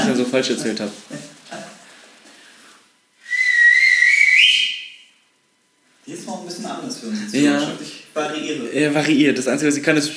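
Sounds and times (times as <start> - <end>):
speech: 0.2 - 1.3, 7.1 - 10.1
person whistling a clear note sliding upward: 3.2 - 5.1.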